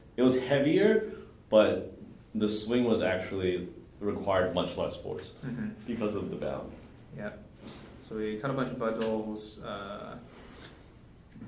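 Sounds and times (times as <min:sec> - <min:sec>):
speech: 0:00.2 - 0:10.3
person burping with a drawn-out low burp: 0:05.4 - 0:05.8.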